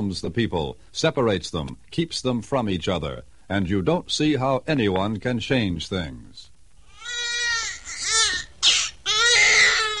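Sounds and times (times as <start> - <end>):
speech: 0.0 - 6.5
baby crying: 6.8 - 9.9.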